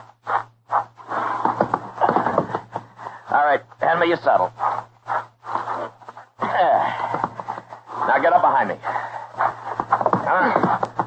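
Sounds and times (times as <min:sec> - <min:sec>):
lame horse shuffling and scraping: 0:00.0 - 0:11.0
heavy thuds: 0:00.3 - 0:03.4, 0:06.1 - 0:11.0
lame horse hooves clopping: 0:00.7 - 0:11.0
speech: 0:03.4 - 0:04.9, 0:08.2 - 0:09.5.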